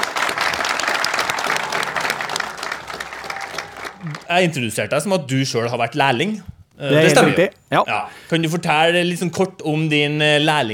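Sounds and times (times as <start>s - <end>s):
audience applause as a guest is welcomed on stage: 0.0s - 4.7s
speech: 4.3s - 10.7s.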